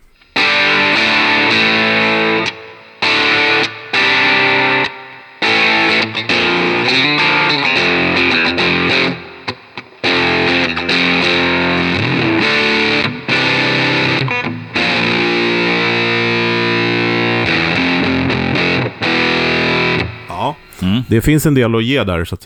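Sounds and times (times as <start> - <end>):
thick heavily saturated electric guitar playing sustained distorted chords: 0.0 - 20.6
speech: 21.2 - 22.4.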